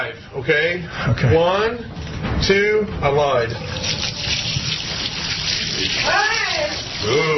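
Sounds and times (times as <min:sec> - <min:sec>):
speech: 0:00.0 - 0:04.1, 0:05.8 - 0:07.3
bucket of water poured over a man's head: 0:03.6 - 0:07.3.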